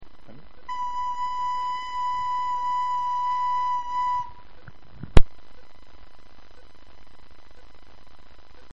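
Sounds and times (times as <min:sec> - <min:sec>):
flute playing note B: 0:00.7 - 0:04.5.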